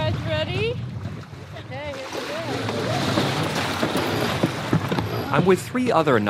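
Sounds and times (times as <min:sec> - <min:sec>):
steady wind off Costa Rica: 0:00.0 - 0:06.2
water noise off Costa Rica: 0:00.0 - 0:06.2
squeaky rope and pulley hoisting sails on a 42-foot sailboat: 0:02.6 - 0:05.6
speech: 0:05.4 - 0:06.2.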